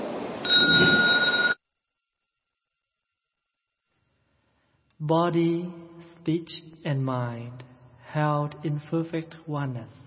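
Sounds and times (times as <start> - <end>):
temple meditation bell ringing: 0.4 - 1.6
speech: 5.0 - 10.0.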